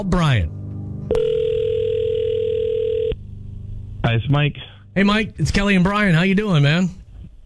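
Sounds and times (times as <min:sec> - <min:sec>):
speech: 0:00.0 - 0:01.3, 0:04.0 - 0:07.0
electronic telephone ringback tone as a call connects: 0:01.1 - 0:03.2.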